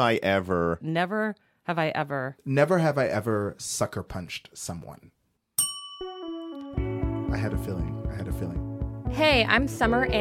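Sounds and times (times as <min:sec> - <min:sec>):
speech: 0:00.0 - 0:05.2, 0:07.3 - 0:10.2
small bell struck, bright tone ringing: 0:05.6 - 0:06.8.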